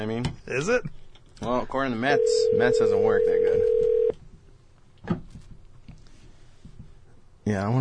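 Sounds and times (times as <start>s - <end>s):
speech: 0.0s - 3.8s, 5.0s - 5.2s, 7.5s - 7.7s
faint steady ringback tone of an outgoing phone call: 2.1s - 4.1s.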